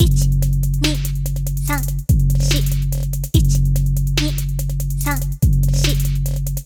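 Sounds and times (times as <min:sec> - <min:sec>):
trap beat: 0:00.0 - 0:06.6.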